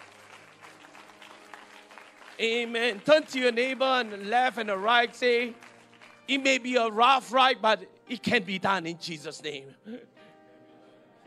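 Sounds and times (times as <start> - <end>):
congregation clapping in sustained dense applause: 0.0 - 7.6
speech: 2.4 - 5.6, 6.3 - 10.2.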